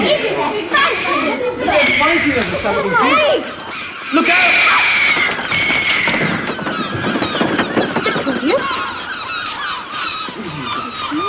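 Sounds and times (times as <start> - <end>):
eagles screeching and squabbling: 0.0 - 11.2.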